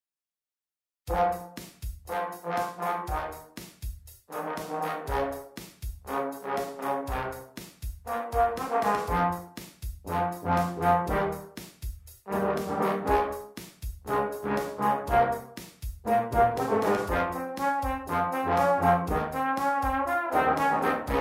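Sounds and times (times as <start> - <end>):
brass quintet playing: 1.1 - 3.6, 4.3 - 11.6, 12.2 - 21.2.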